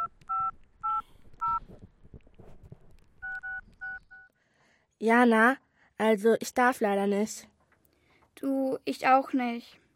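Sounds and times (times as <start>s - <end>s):
telephone touch-tone keypad beeps while dialling: 0.0s - 1.6s, 3.2s - 4.3s
speech: 5.0s - 7.5s, 8.4s - 9.8s.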